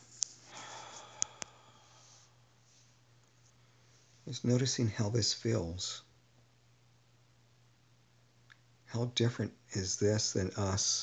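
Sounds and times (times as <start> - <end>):
faint clicks: 0.0 - 1.6
low steady hum: 0.0 - 11.0
soft slow deep breath out: 0.4 - 2.9
speech: 4.3 - 6.1, 8.9 - 11.0.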